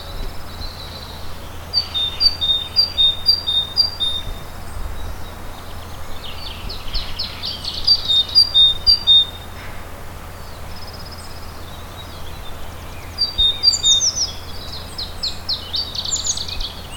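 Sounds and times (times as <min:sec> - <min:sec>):
great tit Parus major singing: 0:00.0 - 0:16.9.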